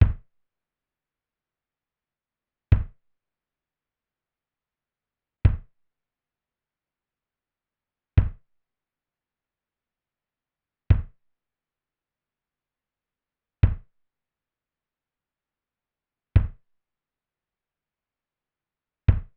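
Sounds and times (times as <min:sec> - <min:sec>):
kick drum mix: 0:00.0 - 0:00.3, 0:02.7 - 0:03.1, 0:05.4 - 0:05.8, 0:08.2 - 0:08.5, 0:10.9 - 0:11.2, 0:13.6 - 0:14.0, 0:16.4 - 0:16.7, 0:19.1 - 0:19.3.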